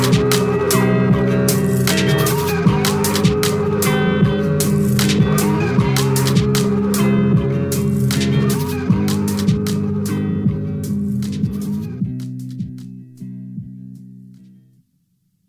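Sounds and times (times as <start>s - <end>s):
layered sustained synth tones: 0.0s - 12.0s
steady crisp hip-hop drum beat: 0.0s - 14.0s
droning bassline: 0.0s - 14.8s.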